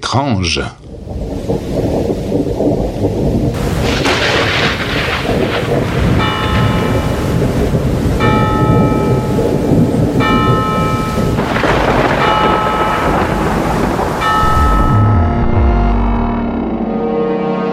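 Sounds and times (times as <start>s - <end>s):
speech: 0.1s - 0.8s
rain: 0.4s - 15.2s
thunder rumbling: 0.8s - 17.1s
church bell of Notre-Dame tolling at night: 6.2s - 17.6s.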